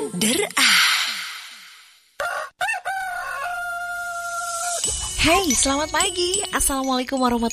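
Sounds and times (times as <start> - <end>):
speech: 0.2 - 0.8, 5.2 - 7.5
rooster crowing: 2.2 - 4.8.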